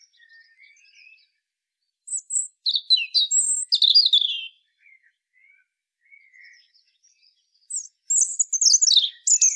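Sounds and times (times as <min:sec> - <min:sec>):
European robin Erithacus rubecula song of high tumbling varied whistles and trills: 0:00.0 - 0:01.4, 0:02.1 - 0:09.5.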